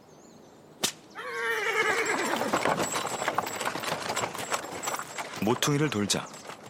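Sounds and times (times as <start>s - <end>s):
whip crack: 0.8s - 1.1s
horse whinny: 1.2s - 3.0s
horse hooves clip-clopping: 1.8s - 6.6s
horse-drawn cart rattling as it rolls: 2.1s - 6.6s
speech: 5.4s - 6.4s.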